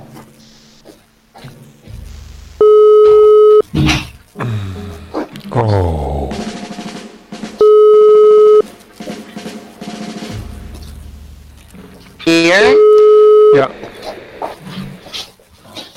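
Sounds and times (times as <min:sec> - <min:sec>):
WhatsApp call tone beeps: 0:02.6 - 0:03.6, 0:07.6 - 0:08.6, 0:12.3 - 0:13.7.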